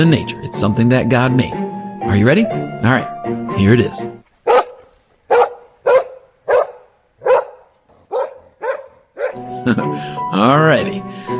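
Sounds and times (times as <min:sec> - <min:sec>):
speech: 0:00.0 - 0:04.2, 0:09.6 - 0:11.3
dog barking: 0:04.4 - 0:09.4.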